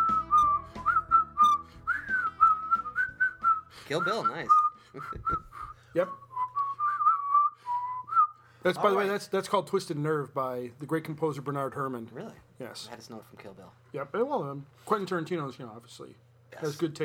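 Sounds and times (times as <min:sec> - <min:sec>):
person whistling a melody: 0:00.0 - 0:08.4
speech: 0:03.9 - 0:06.3, 0:08.6 - 0:17.0.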